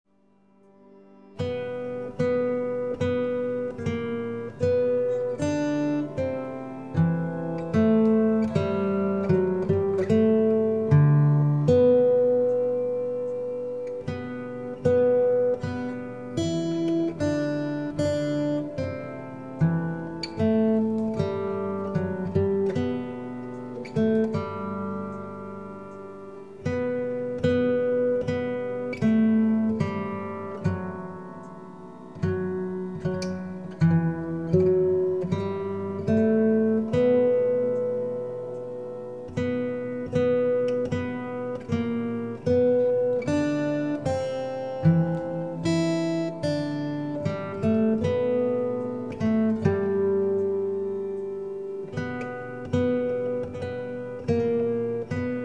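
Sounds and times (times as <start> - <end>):
Christmas carol music: 0.2 - 55.4.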